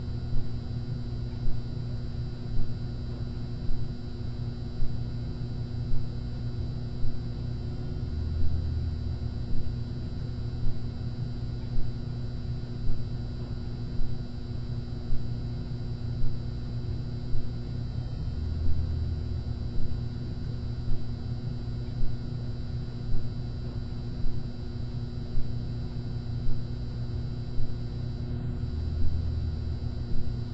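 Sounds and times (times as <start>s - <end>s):
ambience: 0.0s - 30.5s.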